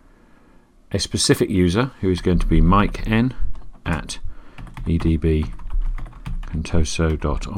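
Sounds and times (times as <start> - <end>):
speech: 0.9 - 5.6, 6.5 - 7.5
typing on a computer keyboard: 2.2 - 7.5.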